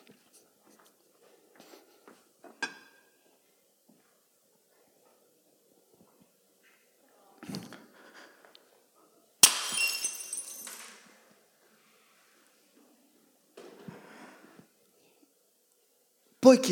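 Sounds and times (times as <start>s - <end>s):
plate breaking with a sharp crash: 9.4s - 11.0s
speech: 16.4s - 16.7s.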